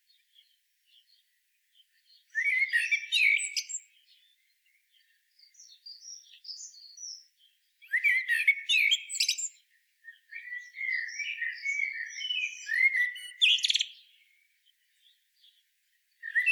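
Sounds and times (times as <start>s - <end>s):
common blackbird Turdus merula song: 0.0s - 16.5s.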